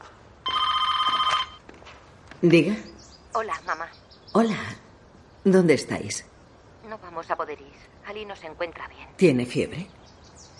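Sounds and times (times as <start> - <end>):
telephone bell ringing from a phone in a hallway: 0.4 - 1.6
speech: 2.4 - 4.8, 5.4 - 6.3, 7.2 - 10.1.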